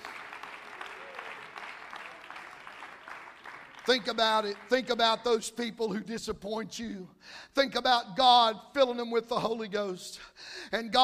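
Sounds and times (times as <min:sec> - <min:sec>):
audience clapping in sustained applause: 0:00.0 - 0:04.9
speech: 0:03.9 - 0:11.0.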